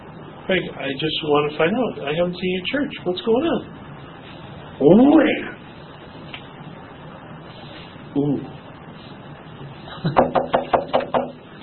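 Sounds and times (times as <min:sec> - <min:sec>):
speech: 0:00.5 - 0:03.9, 0:04.8 - 0:05.6, 0:08.2 - 0:08.5
knocking on a door: 0:10.2 - 0:11.4.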